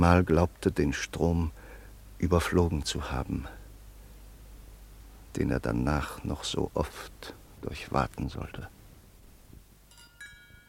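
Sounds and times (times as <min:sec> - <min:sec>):
speech: 0:00.0 - 0:01.6, 0:02.2 - 0:03.6, 0:05.4 - 0:08.8
glasses clinking in a toast: 0:09.9 - 0:10.6.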